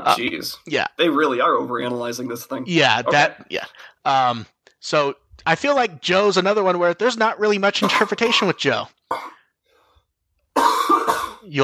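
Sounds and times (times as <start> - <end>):
speech: 0.0 - 9.4, 11.4 - 11.6
loud cough: 7.8 - 9.4, 10.6 - 11.5.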